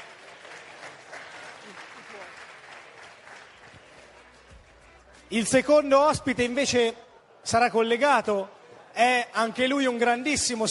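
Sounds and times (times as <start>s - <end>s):
large audience applause: 0.0s - 5.0s
speech: 5.3s - 10.6s.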